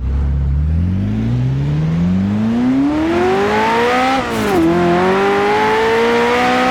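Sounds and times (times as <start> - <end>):
Ferrari F40 engine: 0.0 - 6.7.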